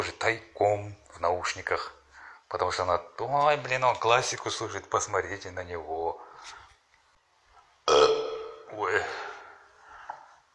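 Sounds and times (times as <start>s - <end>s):
speech: 0.0s - 6.6s, 7.9s - 8.1s
loud deep rumbling burp: 7.8s - 9.5s.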